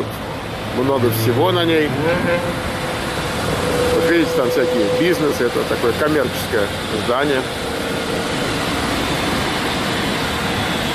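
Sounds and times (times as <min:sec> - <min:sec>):
speech: 0:00.8 - 0:02.7, 0:03.4 - 0:08.4
car wash vacuum cleaners running with a loud broadband roar: 0:02.6 - 0:10.9.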